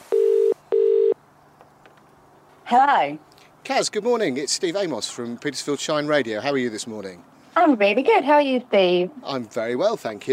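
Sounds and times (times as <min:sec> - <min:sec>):
telephone being dialled: 0:00.1 - 0:01.2
speech: 0:02.7 - 0:10.3.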